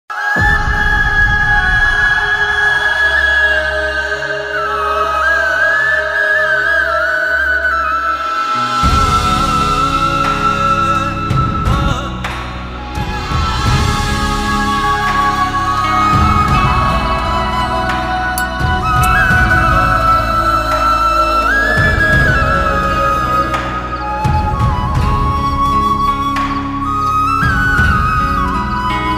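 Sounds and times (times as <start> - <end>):
Pakistani romantic flute ringtone: 0.1 - 29.1.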